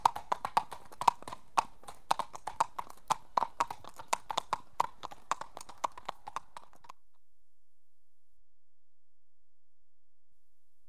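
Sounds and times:
horse hooves clip-clopping: 0.0 - 7.0.

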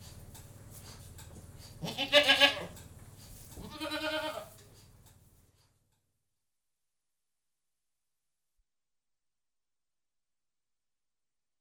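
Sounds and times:
domestic goat bleating inside a goat-house: 1.8 - 2.8, 3.6 - 4.6.

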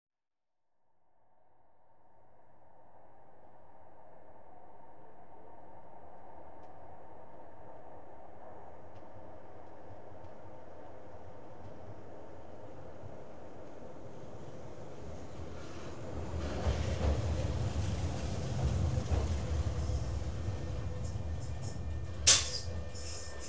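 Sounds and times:
light railway train departing: 7.1 - 23.4
light railway train arriving: 12.0 - 23.4
light railway train doors opening and shutting: 21.0 - 23.4.

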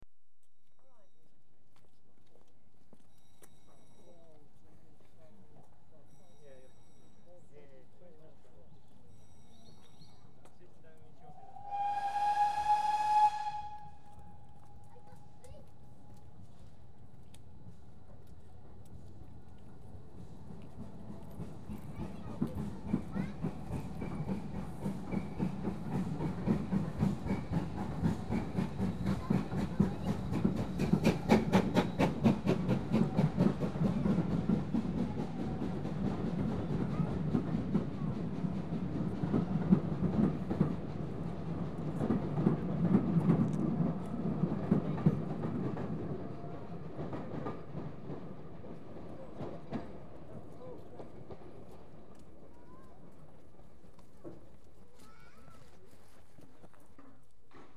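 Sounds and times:
train passing through station: 2.4 - 55.4.

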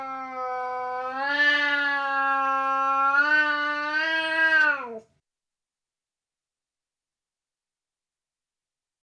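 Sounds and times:
Burmese cat yowling: 0.0 - 5.0.

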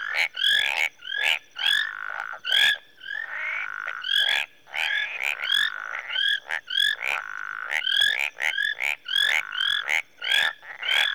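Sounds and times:
tree frog chorus in a marsh in Rwanda: 0.0 - 11.1.

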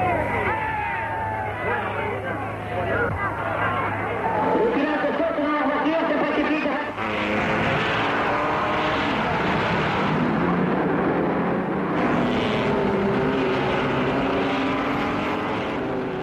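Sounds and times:
murmur of about 300,000 spectators at the Le Mans circuit: 0.0 - 7.8
engine roar of sixty racing cars at the Le Mans circuit in France: 0.0 - 16.2.

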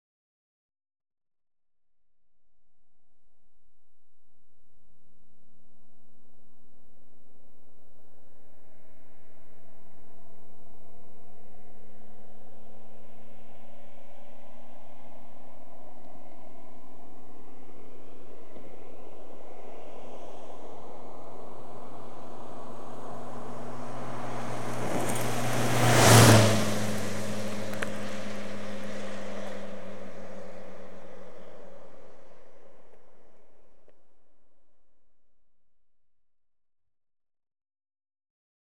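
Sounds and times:
cars passing fast outdoors: 12.6 - 33.6.

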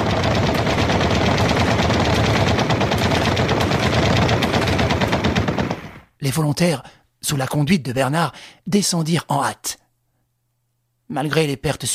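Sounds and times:
rapid gunfire from soldiers in front-line trenches firing at will: 0.0 - 6.1
speech: 6.4 - 9.8, 11.1 - 11.9.

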